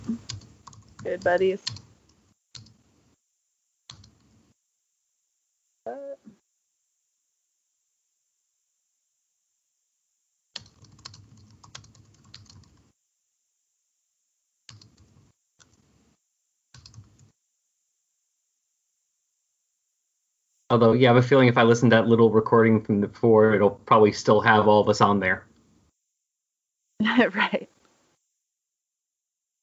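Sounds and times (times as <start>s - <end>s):
speech: 1.0s - 1.8s, 20.7s - 25.5s, 27.0s - 27.7s
typing a message on a computer keyboard: 2.6s - 2.8s, 3.9s - 4.4s, 10.6s - 12.8s, 14.7s - 15.8s, 16.7s - 17.3s.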